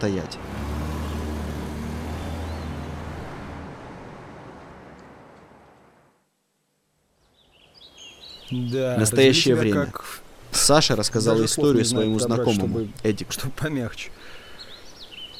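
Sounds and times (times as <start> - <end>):
speech: 0.0 - 0.5, 8.5 - 14.4
car driving away: 0.3 - 6.0.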